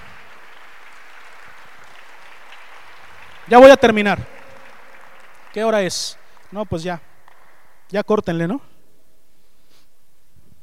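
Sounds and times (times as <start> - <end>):
audience applauding during a sermon: 0.0 - 8.2
speech: 3.5 - 4.4, 5.5 - 7.1, 7.9 - 8.7.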